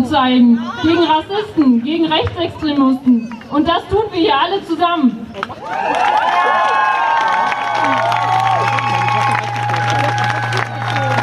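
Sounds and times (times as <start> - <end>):
speech: 0.1 - 7.0
demonstration crowd cheering and clapping: 5.4 - 11.2
overlapping shouts: 5.6 - 11.2.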